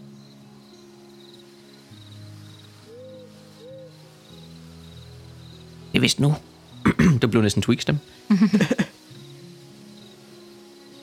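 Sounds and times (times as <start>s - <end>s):
speech: 6.0s - 8.9s
laughter: 8.3s - 8.9s
grasshopper chirping at dusk: 8.3s - 9.0s.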